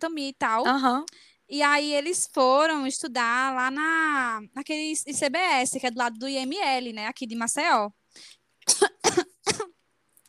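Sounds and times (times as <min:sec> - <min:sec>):
speech: 0:00.0 - 0:09.0
harsh rasping coughing fit: 0:08.6 - 0:10.2.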